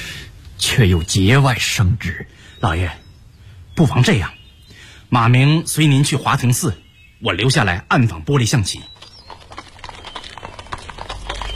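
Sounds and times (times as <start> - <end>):
speech: 0.7 - 3.0, 3.8 - 4.4, 5.1 - 9.0
horse hooves clip-clopping: 8.9 - 11.5
horse-drawn carriage rumbling: 8.9 - 11.5.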